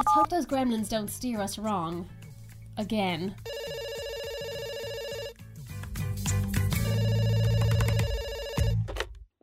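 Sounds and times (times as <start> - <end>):
speech: 0.2 - 2.2, 2.8 - 3.7
telephone ringing on the line: 3.5 - 5.4, 6.8 - 8.9.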